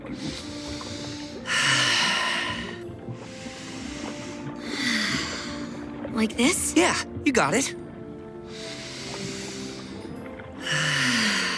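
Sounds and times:
slow deliberate breathing: 0.0 - 5.9, 8.4 - 11.5
speech: 6.2 - 7.8.

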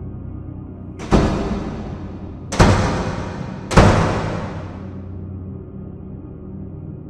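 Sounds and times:
door being shaken forcefully in its frame: 1.0 - 5.0.

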